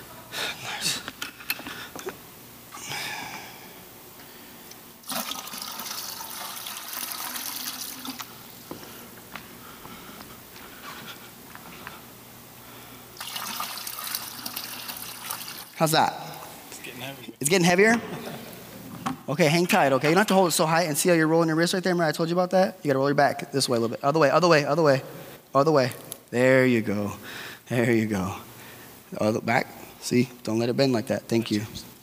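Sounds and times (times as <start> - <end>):
water pouring into a container held by a person: 5.0 - 8.4, 13.2 - 15.8
speech: 15.8 - 16.2, 17.4 - 18.2, 19.3 - 28.5, 29.1 - 31.9.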